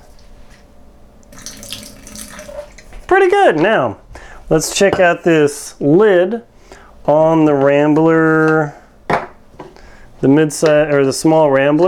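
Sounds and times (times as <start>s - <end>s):
water running and splashing into a kitchen sink: 1.3s - 3.0s
speech: 3.2s - 6.5s, 7.1s - 8.8s, 10.2s - 11.8s.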